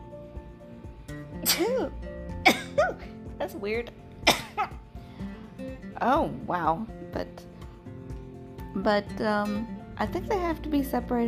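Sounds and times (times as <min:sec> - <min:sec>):
sneeze: 0:01.4 - 0:03.0
speech: 0:01.6 - 0:02.1, 0:03.5 - 0:04.0, 0:06.0 - 0:07.3, 0:08.8 - 0:11.2.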